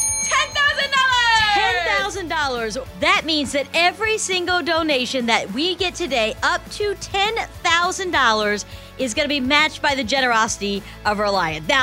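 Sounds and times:
hand bell ringing in celebration: 0:00.0 - 0:01.4
speech: 0:02.2 - 0:11.8.

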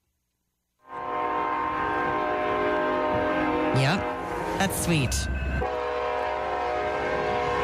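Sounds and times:
loud train whistle blast: 0:00.8 - 0:04.7, 0:05.6 - 0:07.6
speech: 0:03.8 - 0:05.4.

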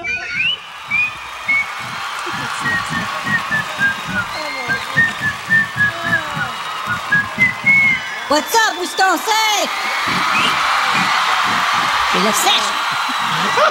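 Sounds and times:
whistled melody in a recorded song: 0:00.1 - 0:09.2, 0:10.0 - 0:12.0
thumping drum beat in a recorded song: 0:00.4 - 0:09.0, 0:09.8 - 0:13.2
laughter: 0:00.6 - 0:13.6
speech: 0:08.3 - 0:10.8, 0:12.2 - 0:13.6.

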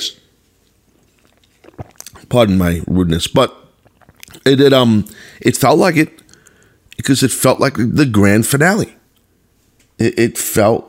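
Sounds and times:
person slurping a sip of coffee: 0:00.6 - 0:02.9, 0:03.6 - 0:05.4, 0:06.0 - 0:07.0
wet swallowing noises: 0:00.7 - 0:03.0, 0:03.6 - 0:05.2
speech: 0:02.3 - 0:03.6, 0:04.4 - 0:06.2, 0:07.0 - 0:09.0, 0:10.0 - 0:10.8.

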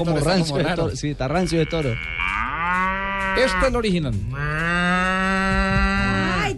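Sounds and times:
speech: 0:00.0 - 0:02.3, 0:03.4 - 0:04.7
cow mooing: 0:01.3 - 0:06.5.

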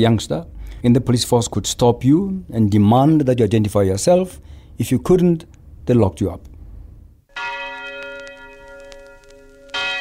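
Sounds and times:
speech: 0:00.0 - 0:06.5
large bell ringing: 0:07.3 - 0:10.0.

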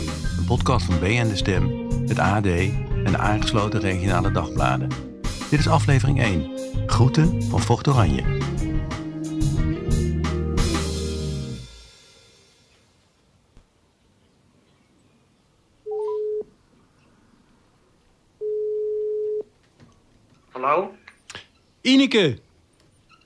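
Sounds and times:
loud burst of music: 0:00.0 - 0:12.6
speech: 0:00.5 - 0:08.5, 0:21.8 - 0:22.5
telephone ringback tones before call answered: 0:15.9 - 0:16.5, 0:18.4 - 0:19.5.

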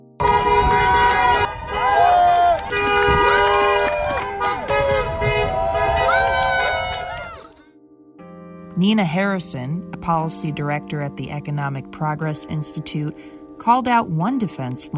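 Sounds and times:
car horns honking from passing drivers: 0:00.2 - 0:07.4
traffic noise: 0:00.2 - 0:07.5
speech: 0:08.8 - 0:14.9.

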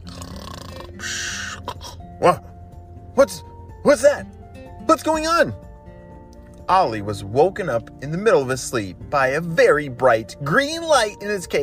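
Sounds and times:
person imitating a sleeping cheetah snoring: 0:00.0 - 0:02.0
speech: 0:02.2 - 0:02.5, 0:03.2 - 0:05.6, 0:06.7 - 0:11.6.

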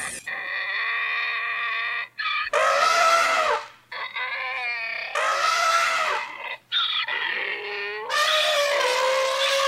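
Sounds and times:
donkey braying: 0:00.0 - 0:09.6
elephant trumpeting: 0:02.2 - 0:09.6.

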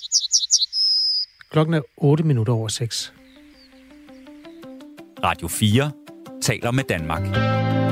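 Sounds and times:
bird chirping: 0:00.0 - 0:05.5
speech: 0:01.5 - 0:03.2, 0:05.2 - 0:07.8.

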